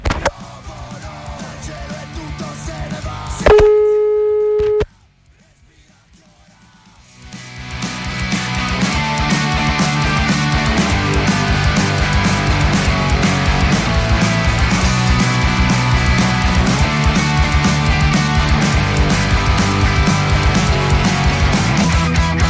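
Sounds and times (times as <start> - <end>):
music: 0.0 - 22.4
telephone busy signal while trying to reconnect a dropped call: 3.5 - 4.9.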